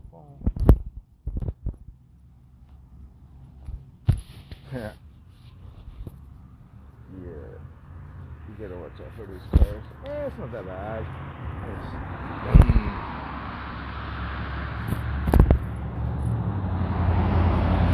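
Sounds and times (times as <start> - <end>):
car passing outside: 5.6 - 17.9.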